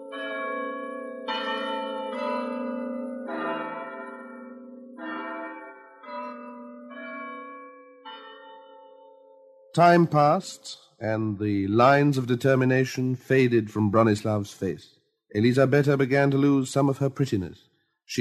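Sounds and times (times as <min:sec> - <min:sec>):
small church bells ringing for a wedding: 0:00.0 - 0:10.2
speech: 0:09.8 - 0:18.1.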